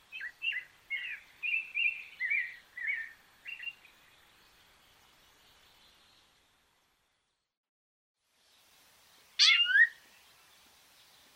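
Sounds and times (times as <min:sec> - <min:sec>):
Rufous-bellied thrush whistled phrases: 0:00.1 - 0:03.9, 0:09.4 - 0:10.0.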